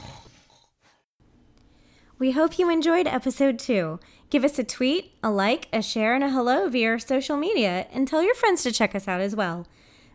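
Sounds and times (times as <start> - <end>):
voice imitating snoring: 0.0 - 0.8
speech: 2.2 - 10.1.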